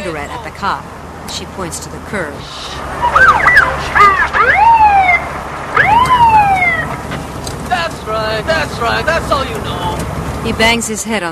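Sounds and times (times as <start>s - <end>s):
speech: 0.1s - 4.8s, 8.1s - 11.3s
police car siren yelping and wailing: 2.9s - 7.0s.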